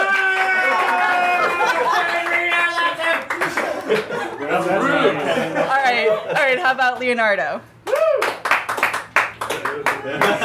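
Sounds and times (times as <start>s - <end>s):
voices cheering and calling out: 0.0s - 3.6s, 7.8s - 8.5s
small crowd clapping: 0.0s - 4.2s, 7.8s - 10.4s
laughter: 0.6s - 6.6s, 9.8s - 10.4s
speech: 6.2s - 7.8s, 9.7s - 10.4s.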